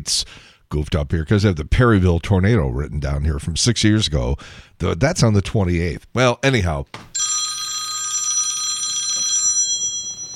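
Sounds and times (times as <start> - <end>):
speech: 0.0 - 7.1
telephone ringing with electronic trill: 7.2 - 10.3.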